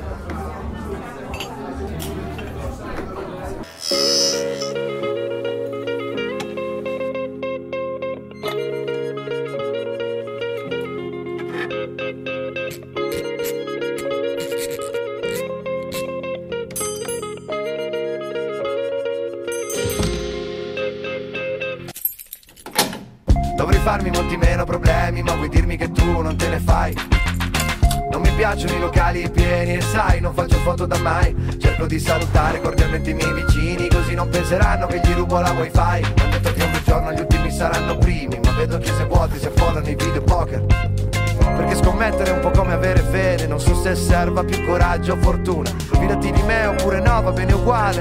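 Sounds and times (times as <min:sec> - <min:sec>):
instrumental song intro with sustained tones and a clear beat: 0:03.6 - 0:21.9, 0:23.3 - 0:47.9
keys jangling and clinking: 0:21.9 - 0:23.0
speech: 0:25.8 - 0:27.1, 0:28.4 - 0:40.9, 0:41.6 - 0:47.9.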